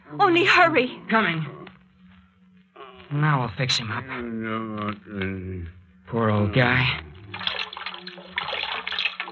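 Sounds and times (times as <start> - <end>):
speech: 0.1 - 1.6, 3.1 - 7.4
cold water running from a tap for bathing a head: 7.3 - 9.3.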